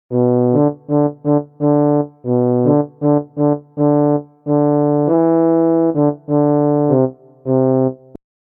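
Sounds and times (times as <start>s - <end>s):
tuba fanfare: 0.1s - 8.2s.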